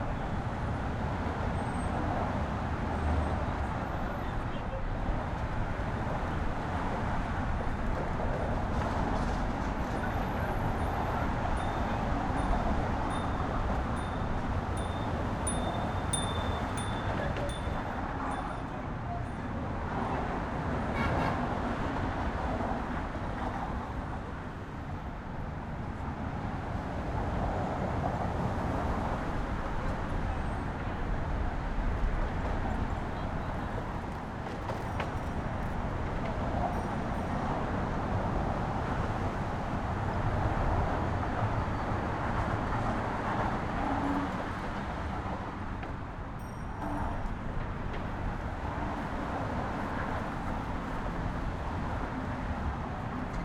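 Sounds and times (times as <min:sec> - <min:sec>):
car traffic on Brooklyn Bridge in New York: 0:00.0 - 0:53.4.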